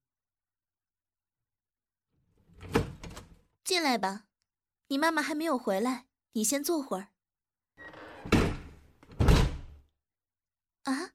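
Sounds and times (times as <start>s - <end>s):
speech: 3.7s - 4.3s, 4.9s - 7.1s
door closing and locking thumps: 8.0s - 9.8s.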